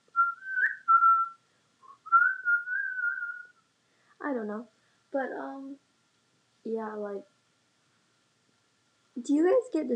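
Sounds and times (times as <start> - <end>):
person whistling a short melody: 0.1 - 3.6
speech: 4.4 - 5.8, 6.6 - 7.3, 9.2 - 9.9.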